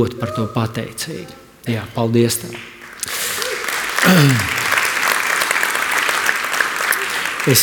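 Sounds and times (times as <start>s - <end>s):
speech: 0.0s - 2.8s, 4.1s - 4.6s, 7.4s - 7.6s
church audience applause: 2.6s - 7.6s.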